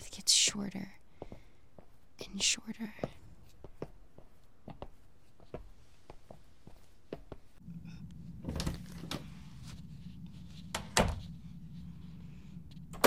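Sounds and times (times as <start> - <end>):
soft footsteps across a room: 0.0 - 7.6, 8.2 - 13.0
low hum: 0.0 - 13.0
speech: 0.2 - 1.0, 2.3 - 3.1
door being handled: 10.7 - 11.2.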